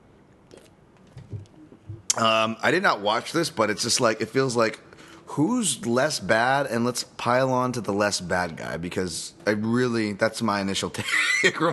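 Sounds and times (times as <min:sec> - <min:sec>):
faint wet mouth sounds from sipping a drink: 0:00.4 - 0:02.2
speech: 0:02.2 - 0:11.7.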